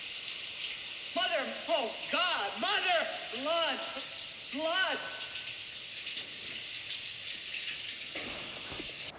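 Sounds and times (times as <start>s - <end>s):
shower water running: 0.0s - 9.1s
speech: 1.2s - 5.2s.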